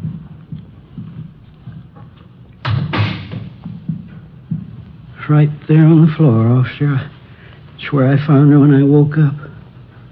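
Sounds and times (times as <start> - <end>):
footsteps thudding across a hard floor: 0.0 - 5.4
speech: 5.3 - 7.2, 7.8 - 9.5.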